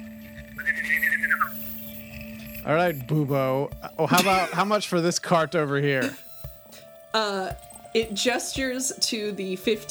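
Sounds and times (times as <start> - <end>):
person whistling birdlike trill imitating a mechanical bird: 0.4 - 2.0
speech: 2.6 - 6.2, 7.1 - 9.8
laughter: 3.8 - 6.3.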